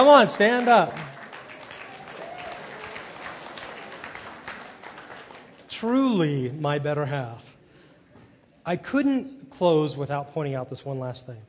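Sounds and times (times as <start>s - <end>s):
speech: 0.0s - 1.1s, 5.8s - 7.5s, 8.7s - 11.4s
crowd applauding: 0.0s - 6.0s.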